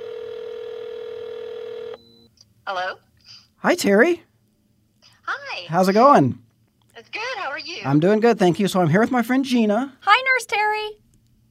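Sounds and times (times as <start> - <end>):
steady telephone tone: 0.0 - 2.3
speech: 2.7 - 4.3, 5.3 - 6.4, 7.0 - 11.0.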